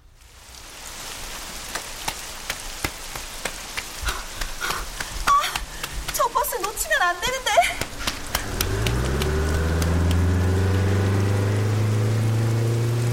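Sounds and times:
steady rain falling: 0:00.0 - 0:13.1
sharp drips and splatters: 0:00.1 - 0:13.1.

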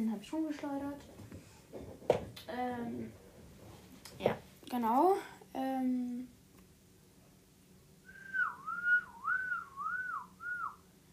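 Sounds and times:
faint low hum: 0:00.0 - 0:11.1
speech: 0:00.2 - 0:03.2, 0:04.2 - 0:06.4
person whistling a wavering warbling tune: 0:08.1 - 0:10.8.

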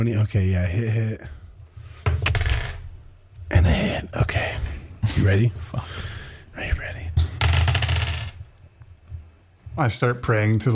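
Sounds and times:
speech: 0:00.0 - 0:01.4, 0:03.5 - 0:07.1, 0:09.8 - 0:10.7
faint noise: 0:00.0 - 0:10.7
handful of dice clattering: 0:02.1 - 0:02.8, 0:07.2 - 0:08.5.

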